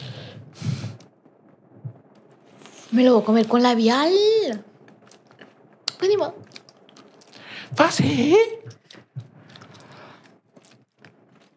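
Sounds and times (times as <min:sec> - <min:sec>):
speech: 0:02.9 - 0:04.7, 0:06.0 - 0:06.4, 0:07.7 - 0:08.7
wet chewing of two pieces of gum: 0:04.8 - 0:07.5, 0:08.7 - 0:11.5.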